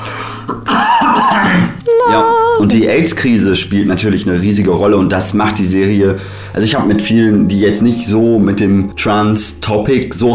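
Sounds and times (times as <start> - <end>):
person clearing throat: 0.5 - 1.8
person coughing: 0.5 - 1.8
speech: 2.0 - 10.3.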